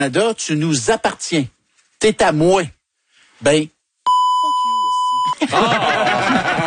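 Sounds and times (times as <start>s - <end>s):
speech: 0.0s - 2.8s, 3.4s - 3.8s, 5.4s - 6.6s
steady high-pitched censor bleep over a spoken swear word: 4.1s - 5.4s
laughter: 5.3s - 6.6s.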